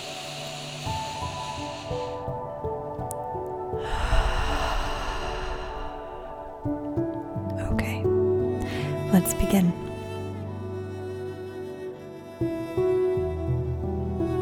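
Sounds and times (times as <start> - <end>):
slow deep breath during a guided relaxation exercise: 0.0 - 7.5, 8.6 - 9.1
quiet sustained music: 0.0 - 14.4
speech: 9.1 - 9.9.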